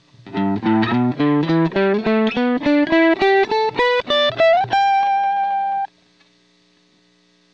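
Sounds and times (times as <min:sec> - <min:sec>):
guitar playing G pentatonic: 0:00.2 - 0:05.9.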